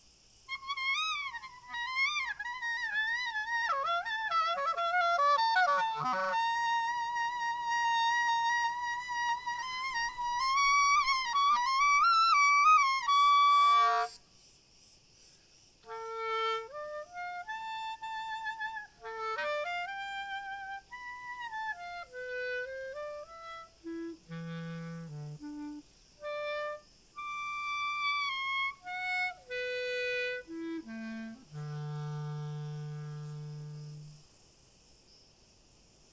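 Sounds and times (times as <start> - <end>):
outdoor crickets chirping: 0.0 - 36.1.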